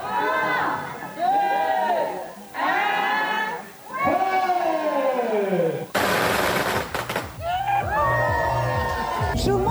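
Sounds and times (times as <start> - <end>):
crowd whooping and shouting: 0.0 - 9.7
string of firecrackers exploding: 6.0 - 9.7.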